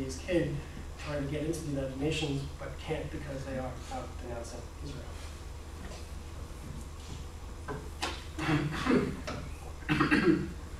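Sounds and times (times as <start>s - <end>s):
speech: 0.1s - 5.3s, 8.5s - 10.6s
phlegmy coughing from the throat: 8.4s - 9.2s, 9.9s - 10.6s.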